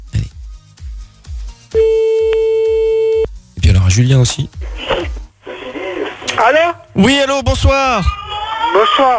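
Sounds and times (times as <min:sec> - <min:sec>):
telephone line tones while a call is being placed: 0:01.8 - 0:03.3
speech: 0:04.0 - 0:04.8, 0:06.4 - 0:09.1.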